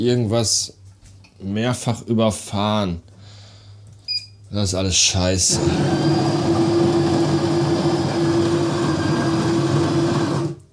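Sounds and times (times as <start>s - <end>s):
speech: 0.0s - 0.8s, 1.4s - 3.1s, 4.5s - 6.4s
coffee machine running with pump hum: 5.5s - 10.7s.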